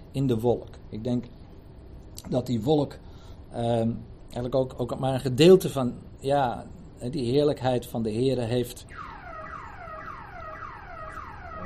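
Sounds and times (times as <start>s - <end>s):
speech: 0.2s - 1.4s, 2.2s - 9.1s
electronic alarm wailing: 8.9s - 11.6s.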